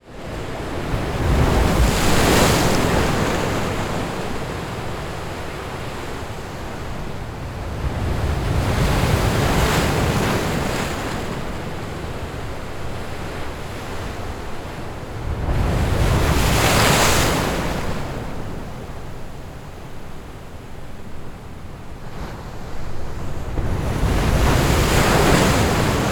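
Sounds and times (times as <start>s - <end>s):
huge waves on the Black Sea 2m away from impact point: 0.4s - 18.8s, 22.5s - 26.1s.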